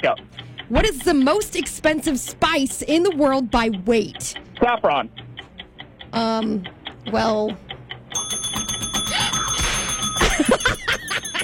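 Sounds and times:
speech: 0.0 - 5.2, 6.1 - 7.6
trivia game timer ticking: 0.1 - 11.4
trivia game timer bell-like ringing: 8.1 - 11.4
laughter: 10.2 - 11.4.

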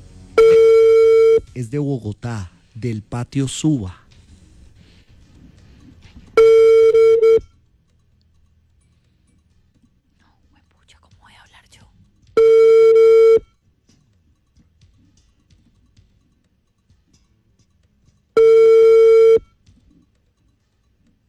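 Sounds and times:
faint low noise: 0.0 - 21.2
telephone busy tone beeps for a rejected call: 0.4 - 1.5, 6.4 - 7.5, 12.4 - 13.5, 18.4 - 19.6
speech: 1.6 - 4.0.

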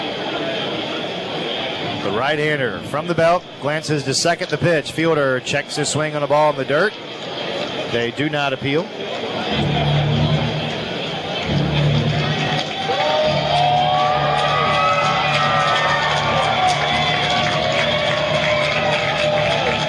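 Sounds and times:
large stadium crowd cheering at a baseball game: 0.0 - 19.8
speech: 2.0 - 9.9
baseball crowd shouting: 9.4 - 19.8.

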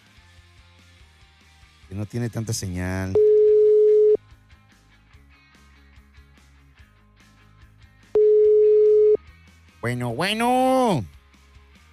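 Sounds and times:
speech: 1.9 - 3.3, 9.8 - 11.2
telephone ringback tone from an unanswered call: 3.2 - 4.2, 8.2 - 9.2.

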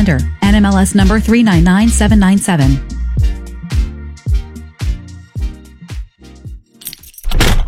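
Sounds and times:
speech: 0.0 - 3.0
bunch of keys jangling: 6.8 - 7.6.

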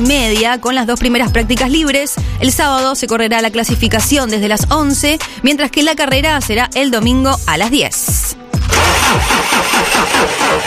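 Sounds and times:
speech: 0.0 - 10.6
engine cranking, catching and idling: 8.6 - 10.6.

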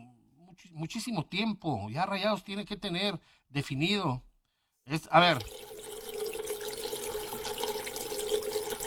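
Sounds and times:
speech: 0.6 - 5.7
water pouring into a pot: 5.3 - 8.8.

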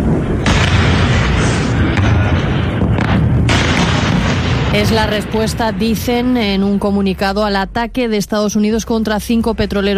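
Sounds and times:
explosions from a ballistic missile attack on bases in Jordan: 0.0 - 7.3
speech: 4.8 - 9.9.

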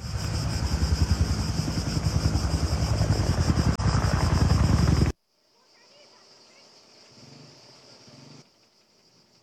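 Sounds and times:
firefighting helicopter engines roaring: 0.0 - 5.1
firefighting helicopter rotors thudding during wildfires: 0.0 - 5.2.

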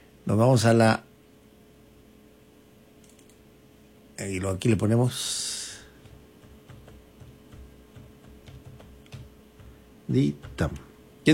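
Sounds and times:
steady low hum: 0.0 - 11.3
speech: 0.3 - 1.1, 4.2 - 5.5, 10.1 - 11.3
computer keyboard typing: 6.0 - 10.9.

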